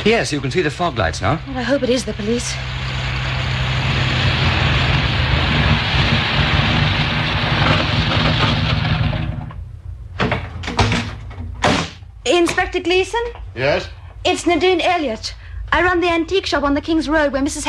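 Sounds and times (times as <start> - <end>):
speech: 0.0 - 2.9, 12.2 - 17.6
car engine rumbling: 0.0 - 10.2.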